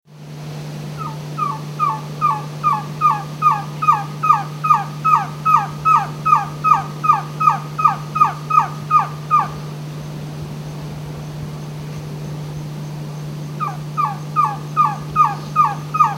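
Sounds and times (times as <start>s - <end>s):
Trogon viridis call: 0.9s - 9.8s, 13.6s - 16.1s.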